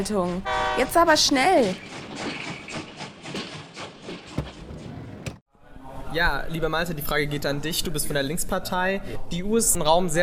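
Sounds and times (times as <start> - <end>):
speech: 0.0 - 2.3, 6.1 - 10.2
train slowing down to stop: 0.2 - 5.4.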